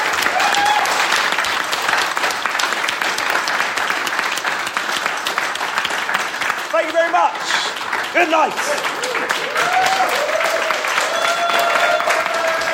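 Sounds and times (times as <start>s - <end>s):
large audience applauding at the close of a 2023 convention: 0.0s - 12.7s
speech: 7.0s - 9.8s.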